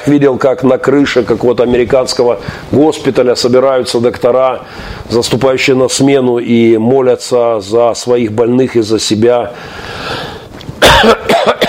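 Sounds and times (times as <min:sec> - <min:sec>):
speech: 0:00.0 - 0:11.6
man coughing: 0:10.8 - 0:11.6.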